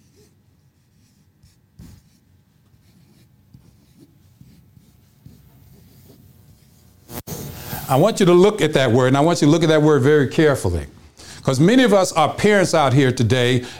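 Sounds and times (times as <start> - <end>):
writing a word down by hand: 0.0 - 7.8
speech: 7.9 - 13.7.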